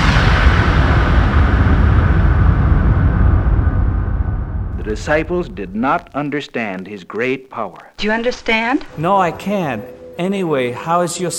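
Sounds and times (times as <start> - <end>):
proton torpedoes being fired with a roaring rumble: 0.0 - 6.2
speech: 4.9 - 11.3.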